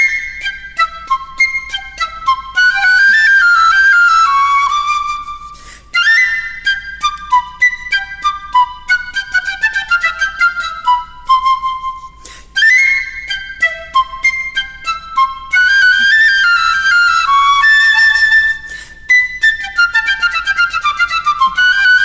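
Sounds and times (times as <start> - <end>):
piccolo playing very high staccato notes: 0.0 - 22.0.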